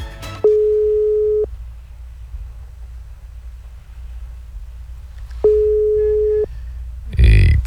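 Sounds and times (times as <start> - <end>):
low hiss: 0.0 - 7.6
ringback tone on an outgoing telephone call: 0.4 - 1.5, 5.4 - 6.5.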